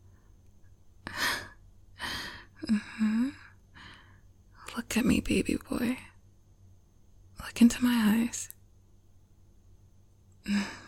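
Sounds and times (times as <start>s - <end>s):
soft breathing: 1.0s - 4.3s
speech: 2.7s - 3.4s, 5.0s - 6.1s, 7.6s - 8.6s, 10.4s - 10.8s.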